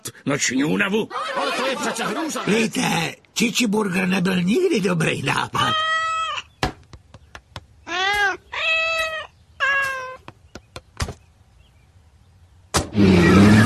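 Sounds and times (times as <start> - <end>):
speech: 0.2 - 6.0
laughter: 0.9 - 3.0
cat meowing: 5.6 - 6.5, 7.9 - 10.2, 13.0 - 13.6
sharp knocks: 6.6 - 8.3, 9.8 - 11.2.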